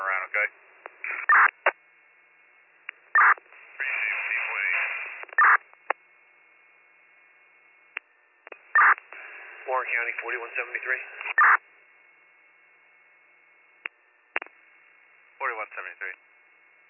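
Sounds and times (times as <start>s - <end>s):
hissing garbled two-way radio transmission: 0.0s - 1.8s, 3.2s - 5.6s, 8.5s - 11.6s, 15.4s - 16.2s
two-way radio static bursts from handheld speaker: 0.0s - 1.8s, 3.1s - 6.0s, 8.5s - 11.6s
speech: 0.4s - 0.7s, 9.9s - 11.6s
two-way radio squelch clicks: 0.8s - 1.8s, 2.8s - 4.1s, 4.7s - 6.0s, 7.9s - 9.3s, 11.2s - 11.6s, 13.8s - 14.6s.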